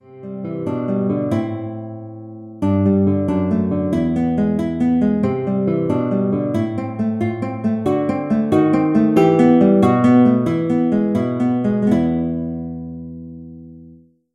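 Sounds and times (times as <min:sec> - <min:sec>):
classical guitar: 0:00.0 - 0:14.2.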